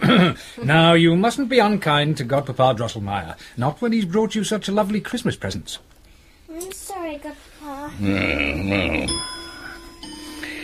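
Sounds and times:
speech: 0.1 - 5.9, 6.5 - 9.4
clock chiming: 9.1 - 10.6.

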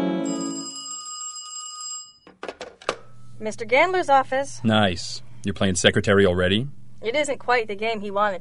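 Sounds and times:
telephone ringing: 0.1 - 2.4
speech: 3.4 - 8.3.

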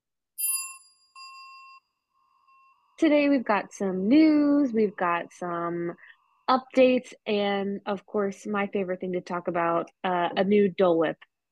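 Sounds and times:
high metallic notification bell dings: 0.4 - 2.9
speech: 3.0 - 11.3.

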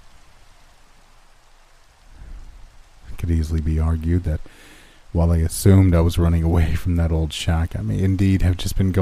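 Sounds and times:
steady rain: 0.0 - 9.0
low rumble of thunder: 2.0 - 3.6
speech: 3.2 - 9.0.

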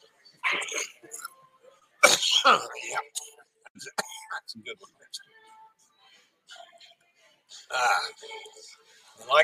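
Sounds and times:
person coughing harshly with throaty rumbles: 2.0 - 4.3
speech: 2.4 - 2.9, 7.8 - 9.4.

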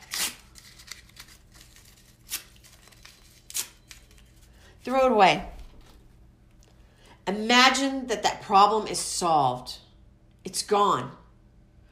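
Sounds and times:
paper being torn up: 0.0 - 4.0
faint paper rustling: 0.0 - 4.6
speech: 4.9 - 5.5, 7.3 - 9.8, 10.5 - 11.2.

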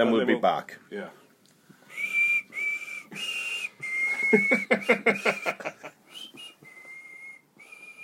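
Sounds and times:
speech: 0.0 - 1.2, 4.3 - 6.0
person whistling a national anthem: 1.9 - 5.5, 6.1 - 8.0
breathy chuckling: 4.1 - 6.0.

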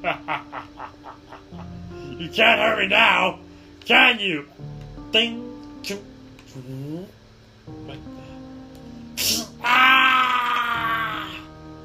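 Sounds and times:
speech: 2.2 - 6.9
person groaning in pain: 9.2 - 11.5
person moaning: 9.2 - 11.5
person screaming in pain as metal pierces their arm: 9.2 - 11.5.

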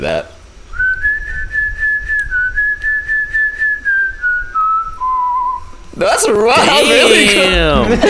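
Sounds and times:
speech: 0.0 - 0.4, 6.0 - 8.0
person whistling a song melody: 0.7 - 5.8
laughter: 6.2 - 8.0.

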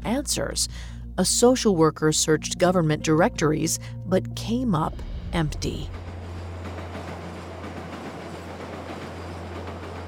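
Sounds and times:
speech: 0.2 - 6.0
train rolling along the tracks: 4.9 - 10.0
rhythmic clickety-clack of train wheels over rail joints: 6.2 - 10.0.

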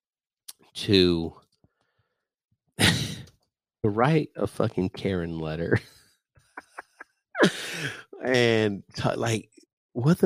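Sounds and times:
speech: 0.7 - 1.4, 3.8 - 6.0, 7.4 - 10.2
breathy burst: 7.4 - 8.2
person yawning: 7.4 - 8.4.

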